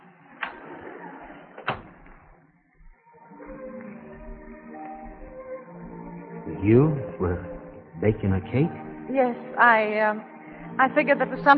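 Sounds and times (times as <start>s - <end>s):
gentle music: 0.0s - 11.5s
door being eased shut: 1.6s - 2.3s
speech: 6.6s - 11.5s.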